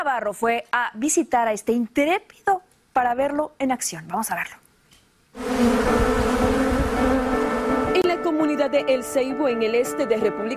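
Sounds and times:
speech: 0:00.0 - 0:04.6, 0:05.3 - 0:06.3, 0:08.3 - 0:10.5
swarm of honeybees on a young farmer buzzing in El Ceibo, eastern Dominican Republic: 0:05.4 - 0:08.1.

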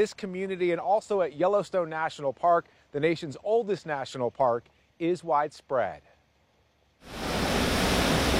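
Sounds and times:
speech: 0:00.0 - 0:06.1, 0:07.0 - 0:07.2
roar of a rushing flood-swollen river: 0:07.0 - 0:08.3.

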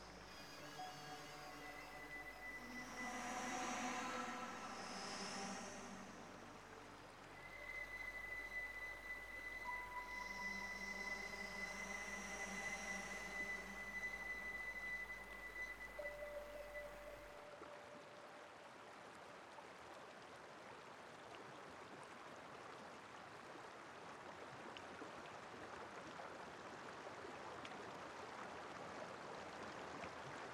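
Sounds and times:
bass flute notes: 0:00.0 - 0:17.8
sustained electronic tones: 0:00.0 - 0:18.0
river flowing in a canyon: 0:00.0 - 0:30.5.

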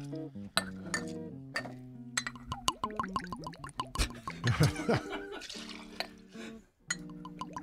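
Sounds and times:
light glassy clinks: 0:00.6 - 0:03.3, 0:06.9 - 0:07.6
vodka glugging from a frosted glass bottle: 0:02.2 - 0:04.8, 0:07.0 - 0:07.6
laughter: 0:04.0 - 0:06.0.

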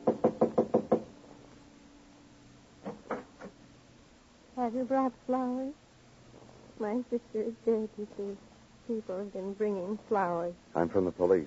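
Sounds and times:
knocks on a wooden panel door: 0:00.0 - 0:01.1
speech: 0:04.7 - 0:05.8, 0:06.8 - 0:11.4.

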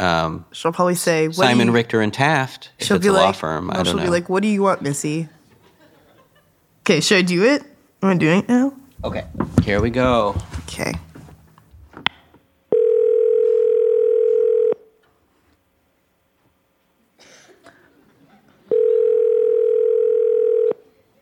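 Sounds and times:
speech: 0:00.0 - 0:05.4, 0:06.9 - 0:11.1
laughter: 0:05.3 - 0:06.6
telephone ringback tone on an outgoing call: 0:12.7 - 0:14.8, 0:18.7 - 0:20.8.

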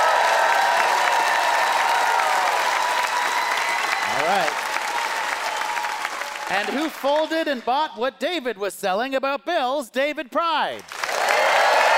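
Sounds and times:
large audience applause voting in a debate in Ottawa: 0:00.0 - 0:07.7, 0:10.8 - 0:11.9
speech: 0:06.5 - 0:10.9.

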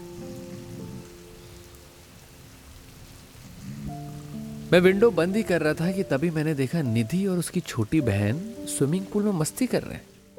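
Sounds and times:
heavy rain drumming onto a surface: 0:00.0 - 0:10.3
speech: 0:04.7 - 0:10.1.

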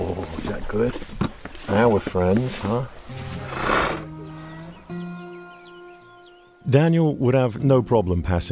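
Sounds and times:
speech: 0:00.6 - 0:03.0, 0:06.7 - 0:08.4
horse snorting: 0:02.9 - 0:04.7
faint bird chirps: 0:04.1 - 0:06.7.

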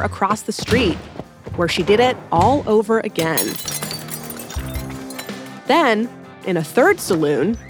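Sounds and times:
speech: 0:00.0 - 0:03.8, 0:05.7 - 0:07.6
saloon mirrors, glasses and bottles shattering and clinking: 0:03.1 - 0:05.7.

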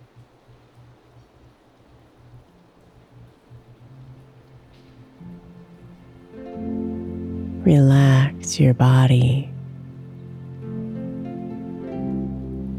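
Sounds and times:
soft steady rainfall outside: 0:00.0 - 0:07.6
gentle music: 0:00.0 - 0:12.7
person speaking calmly: 0:07.6 - 0:09.5
speech: 0:07.6 - 0:09.5.

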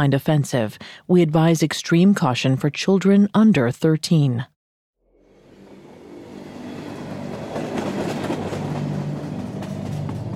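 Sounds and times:
speech: 0:00.0 - 0:04.5
train boxcars rattling and clanking along railway tracks: 0:05.8 - 0:10.3.

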